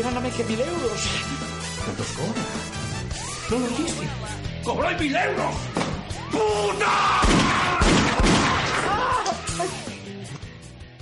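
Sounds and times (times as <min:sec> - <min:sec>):
speech: 0:00.0 - 0:02.9, 0:03.5 - 0:08.3
wavering tonal backdrop of voices or music: 0:00.0 - 0:10.4
gunshots in a film excerpt: 0:07.2 - 0:09.0.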